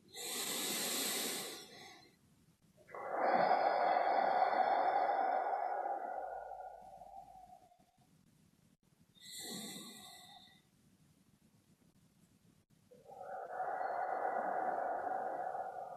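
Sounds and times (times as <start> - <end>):
slow deep breaths in and out: 0.0 - 2.2, 2.9 - 8.1, 9.2 - 10.7, 12.9 - 15.9.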